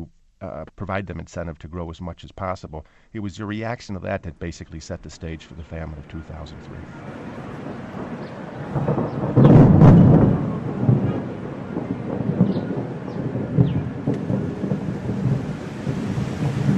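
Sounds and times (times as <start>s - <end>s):
speech: 0.4s - 7.4s, 8.7s - 9.2s
deep rumble of thunder: 4.4s - 16.7s
steady rain in the Ethiopian highlands: 5.3s - 16.7s.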